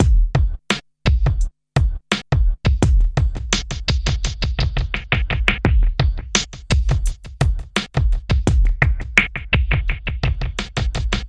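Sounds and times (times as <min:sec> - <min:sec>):
delayed filtered drums: 0:00.0 - 0:11.2.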